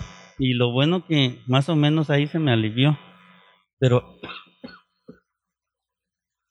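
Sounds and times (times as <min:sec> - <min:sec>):
speech: 0:00.4 - 0:03.1, 0:03.8 - 0:04.8
person coughing: 0:04.2 - 0:05.2
throat clearing: 0:04.2 - 0:05.3.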